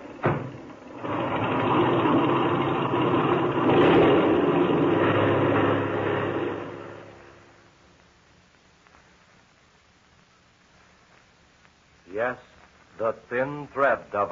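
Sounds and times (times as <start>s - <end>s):
airplane engine revving with brakes set before takeoff: 0.9s - 7.6s
speech: 12.2s - 14.3s.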